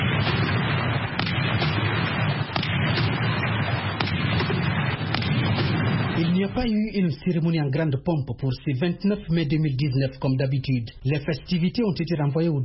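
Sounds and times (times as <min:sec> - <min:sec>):
cannon shots from a 21-gun salute for a presidential swearing-in in Nigeria: 0:00.0 - 0:07.2
speech: 0:06.5 - 0:12.6.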